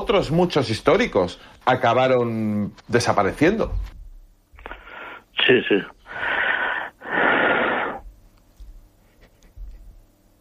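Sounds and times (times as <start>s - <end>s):
speech: 0.1s - 4.0s, 5.5s - 6.3s
heavy harsh wheezing breaths into a microphone: 4.6s - 5.3s, 6.0s - 8.1s.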